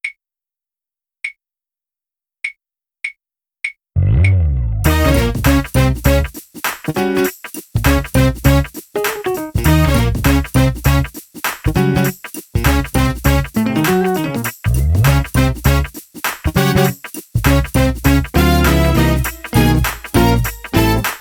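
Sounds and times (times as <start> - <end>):
drumless jam music: 4.2 - 21.1.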